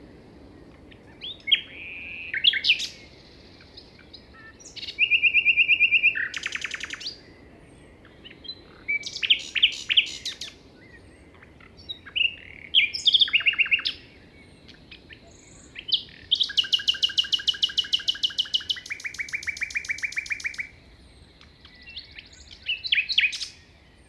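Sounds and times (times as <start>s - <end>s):
common nightingale singing beside a path on the Plateau de Lesches en Diois: 0.0s - 24.0s
gentle wind hiss: 0.0s - 24.0s.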